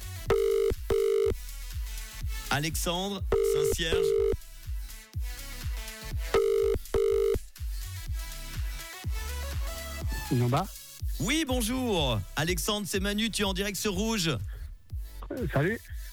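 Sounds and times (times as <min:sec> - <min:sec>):
music: 0:00.0 - 0:16.1
telephone ringing during outgoing call: 0:00.3 - 0:01.4, 0:03.3 - 0:04.4, 0:06.4 - 0:07.4
speech: 0:02.6 - 0:04.3, 0:10.3 - 0:14.6, 0:15.3 - 0:16.1.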